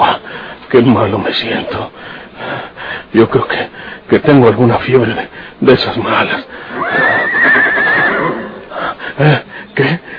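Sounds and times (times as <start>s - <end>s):
speech: 0.7s - 7.2s, 9.2s - 10.1s
horse neighing: 6.7s - 8.7s.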